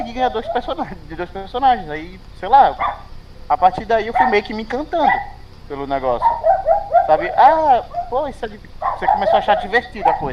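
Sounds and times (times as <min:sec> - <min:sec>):
dog barking in short bursts: 0:00.0 - 0:00.9, 0:02.6 - 0:03.1, 0:04.0 - 0:05.4, 0:06.2 - 0:10.3
speech: 0:00.1 - 0:06.5, 0:07.1 - 0:10.3.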